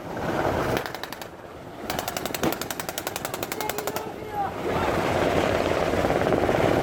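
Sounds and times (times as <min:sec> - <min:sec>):
wind: 0:00.0 - 0:06.8
automatic gunfire from several weapons fired from a ship toward the sea: 0:01.9 - 0:04.2.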